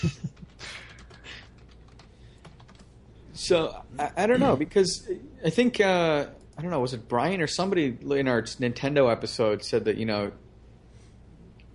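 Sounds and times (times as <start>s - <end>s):
speech: 0.0s - 0.4s, 3.4s - 10.4s
several people typing on computer keyboards: 0.0s - 3.0s.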